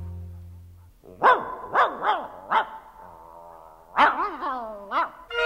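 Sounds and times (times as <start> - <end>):
large dog barking: 1.0 - 5.3.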